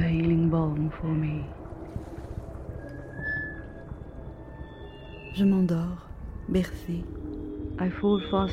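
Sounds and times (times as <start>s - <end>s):
water lapping against a boat hull: 0.0s - 4.5s
low rumbling: 0.0s - 8.5s
speech: 0.6s - 1.6s, 5.4s - 8.5s.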